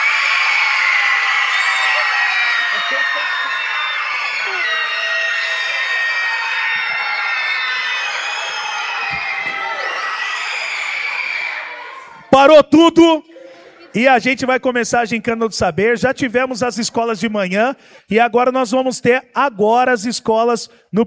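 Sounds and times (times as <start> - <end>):
large crowd of schoolchildren shouting and cheering: 0.0 - 12.4
laughter: 1.7 - 5.4, 13.2 - 14.4
speech: 12.4 - 13.3, 14.0 - 21.0.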